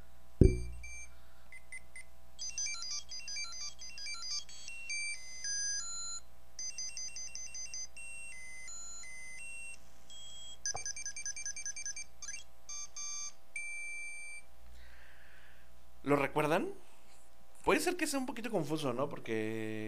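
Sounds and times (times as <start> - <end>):
Tamagotchi virtual pet toy beeping: 2.4 - 14.4
speech: 16.1 - 16.8, 17.7 - 19.8.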